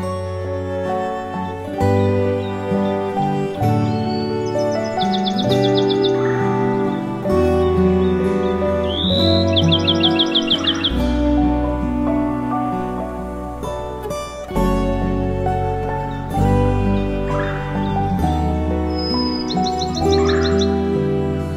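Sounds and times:
loud musical backing of sustained tones: 0:00.0 - 0:21.5
songbirds singing and chirping: 0:00.0 - 0:21.5.

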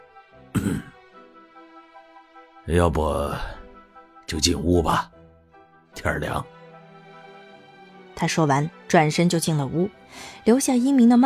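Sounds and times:
speech: 0:00.6 - 0:00.9, 0:02.7 - 0:03.6, 0:04.3 - 0:05.1, 0:06.0 - 0:06.6, 0:08.2 - 0:11.2
man's light soft cough: 0:00.6 - 0:01.0.

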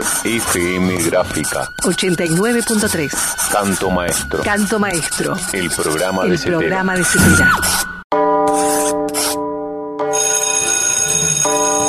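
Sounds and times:
speech: 0:00.2 - 0:07.9
bell ringing: 0:08.2 - 0:11.8.

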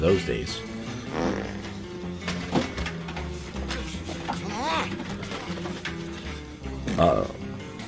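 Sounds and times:
speech: 0:00.0 - 0:01.6, 0:07.0 - 0:07.4
buzzy sputtering fart: 0:01.0 - 0:01.9
clattering noise: 0:02.2 - 0:06.5.

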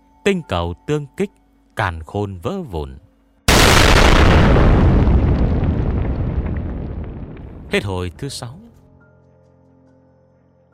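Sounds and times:
speech: 0:00.2 - 0:03.0, 0:07.7 - 0:08.6
huge thunderous explosion: 0:03.5 - 0:07.9.

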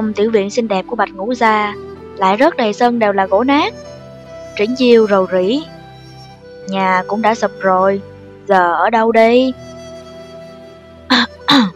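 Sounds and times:
speech: 0:00.0 - 0:04.0, 0:04.6 - 0:05.8, 0:06.6 - 0:09.7
dry cough: 0:11.1 - 0:11.7
throat clearing: 0:11.1 - 0:11.7.

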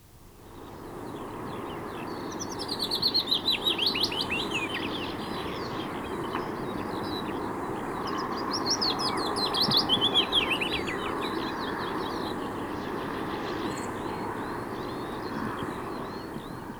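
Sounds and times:
willow warbler song: 0:00.0 - 0:16.7.

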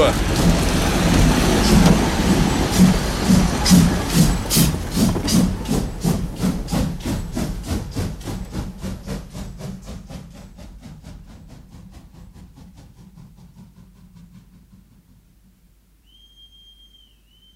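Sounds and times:
street traffic rumbling: 0:00.0 - 0:06.0
chugging pulses: 0:00.0 - 0:15.4.

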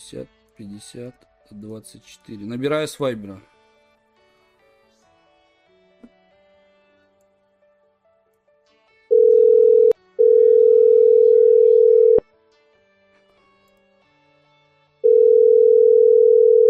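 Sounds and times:
speech: 0:00.1 - 0:03.5
ringback tone of an outgoing Viber call: 0:09.1 - 0:12.2, 0:15.0 - 0:16.6.

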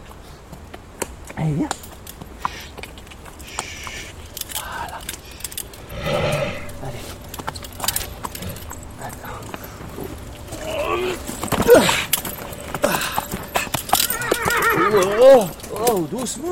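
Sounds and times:
horse hooves clip-clopping: 0:00.0 - 0:16.5
speech: 0:01.4 - 0:01.9, 0:16.2 - 0:16.5
horse neighing: 0:05.6 - 0:08.9, 0:10.2 - 0:15.9.

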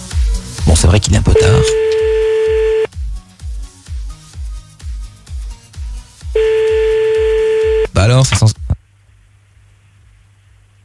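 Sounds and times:
speech: 0:00.7 - 0:01.9, 0:08.0 - 0:08.6
telephone dial tone: 0:01.4 - 0:02.9, 0:06.4 - 0:07.9
telephone keypad beeps with a low thump: 0:01.4 - 0:02.9, 0:06.4 - 0:07.9.

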